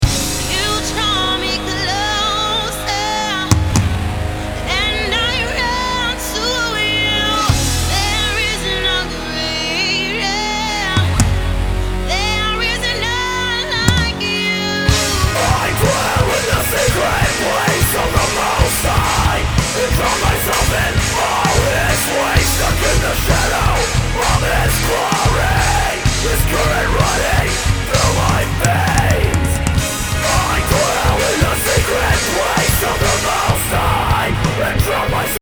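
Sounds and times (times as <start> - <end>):
melodic metalcore music rough mix: 0.0 - 35.4.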